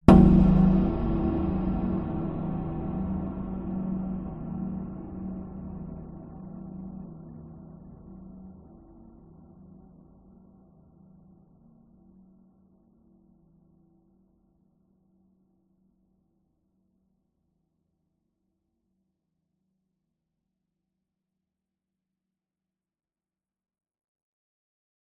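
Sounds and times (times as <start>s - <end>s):
dark reverberant cinematic shock hit: 0.1s - 9.6s.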